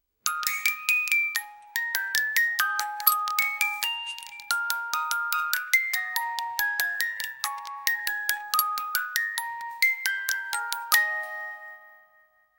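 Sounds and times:
retro music box: 0:00.2 - 0:12.5.

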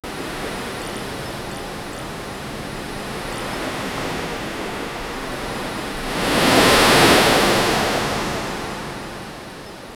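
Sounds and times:
ocean waves crashing: 0:01.7 - 0:09.2.

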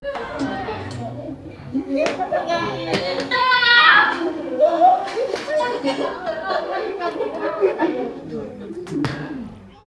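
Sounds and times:
indoor ambient sounds: 0:00.1 - 0:05.0
laughter: 0:00.3 - 0:08.8.

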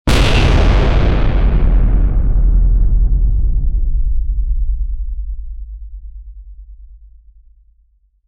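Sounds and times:
metal ship hitting rumbly: 0:00.1 - 0:05.8.

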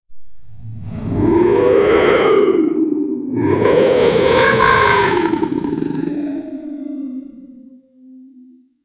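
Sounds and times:
Tyrannosaurus rex roar: 0:01.0 - 0:08.7.

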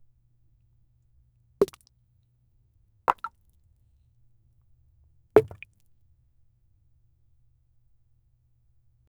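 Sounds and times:
rock dropping on earth ground: 0:01.6 - 0:01.8, 0:03.1 - 0:03.3, 0:05.4 - 0:05.6.

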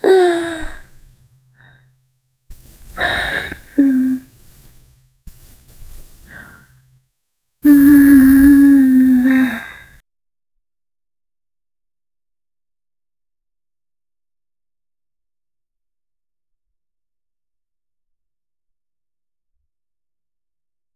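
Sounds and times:
person crying quietly and emotionally: 0:00.0 - 0:00.9, 0:03.0 - 0:04.3, 0:07.6 - 0:09.9.

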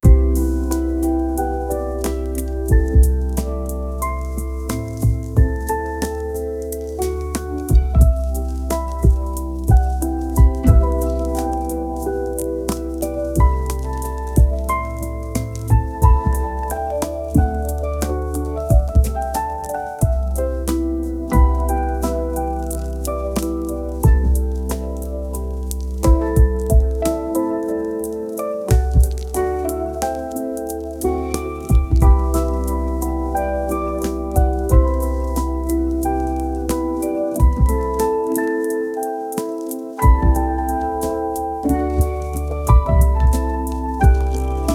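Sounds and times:
lo-fi chill hip hop instrumental: 0:00.0 - 0:44.7
soft piano: 0:00.0 - 0:44.7.

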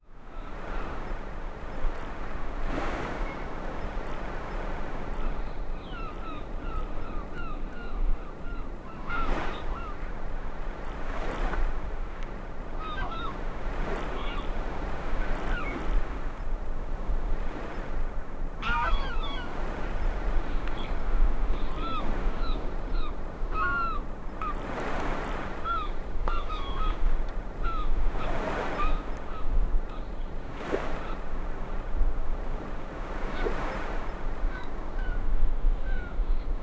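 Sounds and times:
distant waves in a harbor: 0:00.2 - 0:36.6
seagulls in a harbor: 0:05.8 - 0:10.0, 0:12.8 - 0:14.6, 0:15.2 - 0:15.8, 0:18.6 - 0:19.8, 0:20.5 - 0:24.6, 0:25.6 - 0:27.0.

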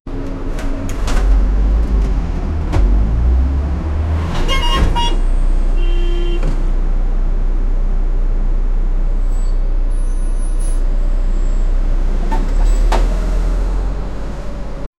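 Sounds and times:
city bus door opening: 0:00.1 - 0:05.4, 0:06.2 - 0:06.8, 0:12.2 - 0:14.6
city noise: 0:00.1 - 0:14.9.

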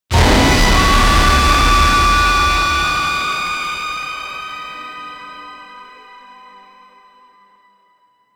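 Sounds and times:
intense horror sting: 0:00.1 - 0:05.2.

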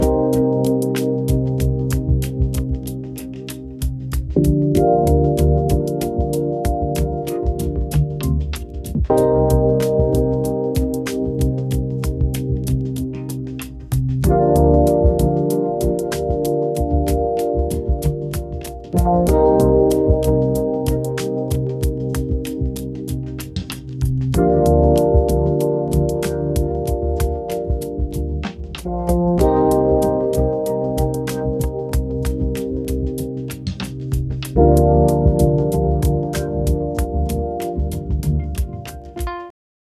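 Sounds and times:
lo-fi funk groove: 0:00.0 - 0:39.5.

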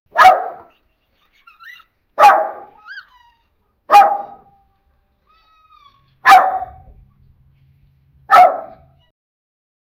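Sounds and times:
chihuahua and pit bull barking: 0:00.1 - 0:00.7, 0:02.2 - 0:02.9, 0:03.9 - 0:04.5, 0:06.2 - 0:06.9, 0:08.3 - 0:09.0.

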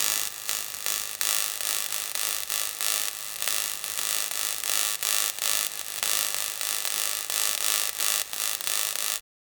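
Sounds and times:
electric spark: 0:00.0 - 0:09.2.

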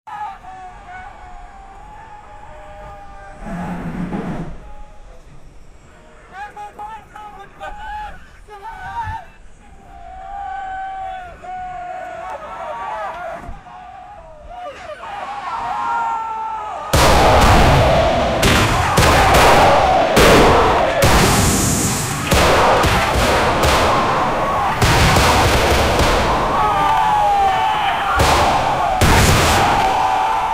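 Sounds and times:
fierce gunfight on the street: 0:17.0 - 0:30.5.

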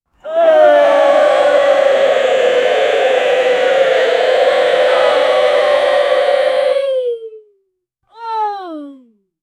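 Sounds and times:
game show audience: 0:00.3 - 0:06.9.

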